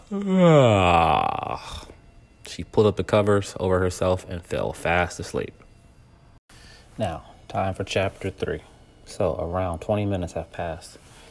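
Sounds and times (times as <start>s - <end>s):
narrator performing a human yawn for a storybook character: 0.0s - 2.0s
speech: 0.1s - 1.9s, 2.5s - 5.6s, 7.0s - 11.1s.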